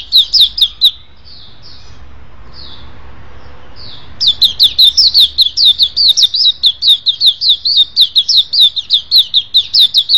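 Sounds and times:
Oriental magpie-robin singing high looping whistled notes: 0.0s - 2.0s, 3.8s - 10.1s.

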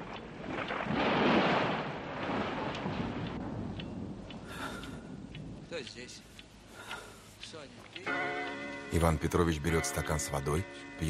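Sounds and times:
thunderstorm rumble outside: 0.0s - 5.8s
speech: 5.8s - 6.4s, 7.5s - 11.0s.

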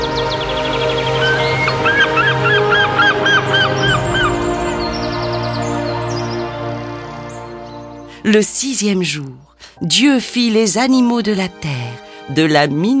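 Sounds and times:
birds calling in loud rapid honks: 0.0s - 8.2s
speech: 8.3s - 12.9s.

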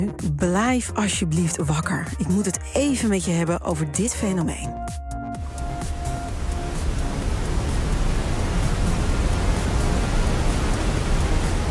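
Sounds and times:
speech: 0.0s - 5.0s
steady white noise for helping babies sleep: 5.4s - 11.6s.

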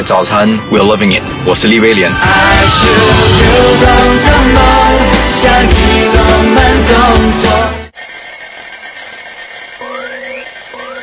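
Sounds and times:
speech: 0.0s - 7.8s
electronic alarm clock beeping: 7.9s - 11.0s.

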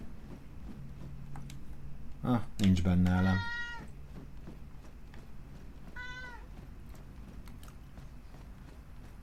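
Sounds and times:
steady low noise: 0.0s - 9.2s
speech: 2.2s - 3.5s
cat meowing: 3.4s - 3.9s, 6.0s - 6.5s.

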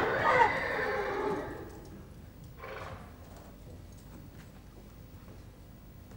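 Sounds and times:
carriage horse neighing as it is brought to a stop: 0.0s - 1.8s.

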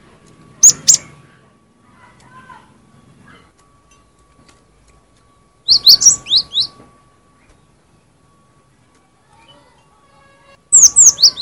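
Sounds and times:
faint steady hum: 0.0s - 11.3s
cinereous tit song of high downslurred chirps: 0.5s - 1.2s, 3.6s - 11.3s.

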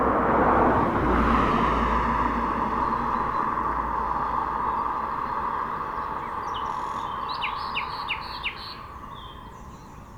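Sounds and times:
road traffic: 0.0s - 10.1s
nightingale singing in a bush: 2.9s - 10.1s.

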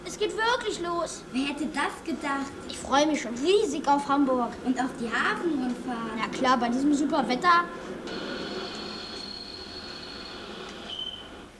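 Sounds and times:
speech: 0.2s - 8.3s
passenger train wheels squealing: 8.1s - 11.3s.

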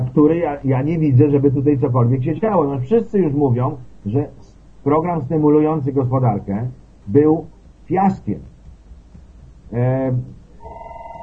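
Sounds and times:
speech: 0.2s - 8.5s, 9.7s - 10.4s
telephone ringing with electronic tones: 10.6s - 11.2s.

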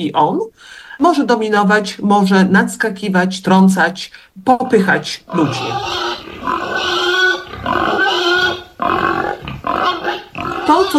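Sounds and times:
speech: 0.0s - 7.0s
young boar grunting: 5.2s - 10.9s.

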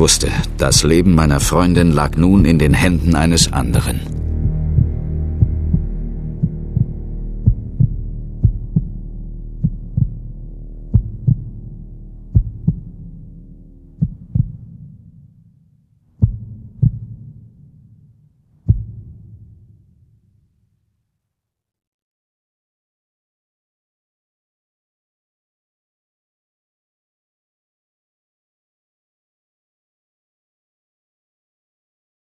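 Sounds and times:
speech: 0.0s - 4.2s
deep droning hum: 0.0s - 20.0s
failing heartbeat pulse thumps: 2.4s - 15.4s, 16.1s - 17.9s, 18.5s - 19.7s.

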